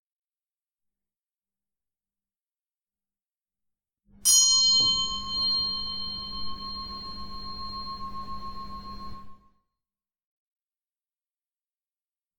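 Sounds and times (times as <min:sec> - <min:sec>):
single bell struck for vespers: 0:04.3 - 0:09.4.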